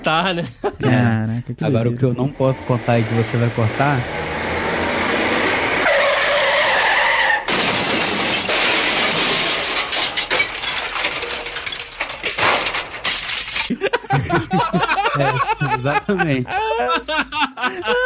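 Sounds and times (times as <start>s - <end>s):
speech: 0.0s - 4.4s, 15.2s - 18.0s
laughter: 0.4s - 2.5s, 13.7s - 18.0s
loud truck tire screech sound effect: 2.4s - 7.5s
sudden crash: 2.8s - 13.8s
glass shattering: 7.4s - 13.8s
debris clattering: 7.5s - 15.2s.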